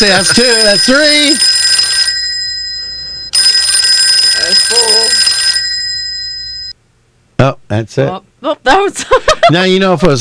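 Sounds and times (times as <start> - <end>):
speech: 0.0 - 1.6, 7.4 - 10.1
telephone ringing with a bright trilling electronic bell: 0.0 - 6.8.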